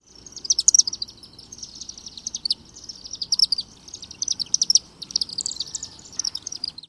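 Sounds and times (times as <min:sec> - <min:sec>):
chimney swift chattering: 0:00.4 - 0:06.8.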